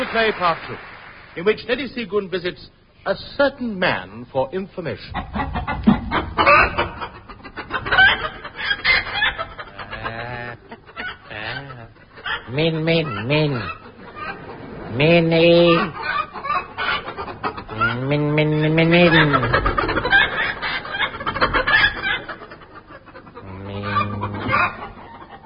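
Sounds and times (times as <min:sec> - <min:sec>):
speech: 0:00.2 - 0:05.6, 0:12.5 - 0:13.8, 0:14.9 - 0:16.0, 0:18.0 - 0:19.7
laughter: 0:05.1 - 0:25.4
person imitating chicken squawks and clucks: 0:17.7 - 0:18.8, 0:23.4 - 0:24.7.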